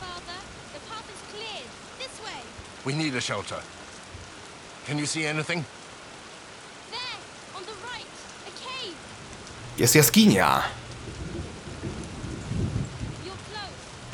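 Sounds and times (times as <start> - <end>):
speech: 2.8 - 3.8, 4.9 - 5.8, 9.8 - 10.8
heavy rain: 3.7 - 14.1.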